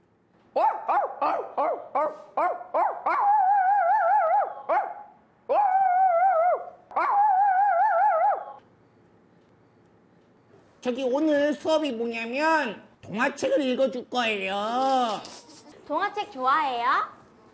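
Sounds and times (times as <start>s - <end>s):
voice imitating puppy yips: 0.6s - 8.6s
speech: 10.8s - 17.1s.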